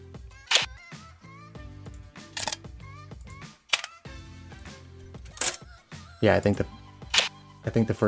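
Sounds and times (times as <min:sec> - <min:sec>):
soft steady tonal background: 0:00.0 - 0:08.0
crisp mechanical camera shutter clicks: 0:00.5 - 0:00.7, 0:02.4 - 0:02.6, 0:03.7 - 0:04.0, 0:07.0 - 0:07.4
speech: 0:06.2 - 0:06.8, 0:07.7 - 0:08.0.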